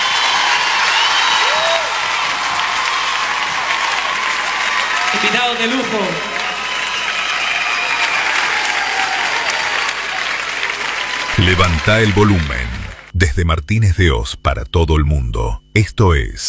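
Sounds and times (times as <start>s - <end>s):
crowd applauding: 0.0s - 13.2s
speech: 5.2s - 6.3s, 11.4s - 16.4s.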